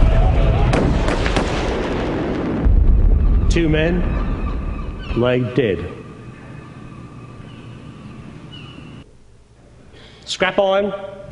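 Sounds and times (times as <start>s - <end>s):
gunshots: 0.0s - 5.2s
loud dense rumble: 0.0s - 9.0s
speech: 3.6s - 4.3s, 5.2s - 6.0s, 10.3s - 11.2s.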